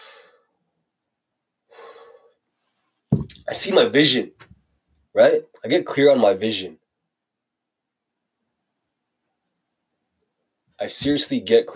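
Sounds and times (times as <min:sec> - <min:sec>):
deep breathing into the belly: 0:00.0 - 0:00.5, 0:01.7 - 0:02.4
speech: 0:03.5 - 0:04.4, 0:05.2 - 0:06.8, 0:10.8 - 0:11.7.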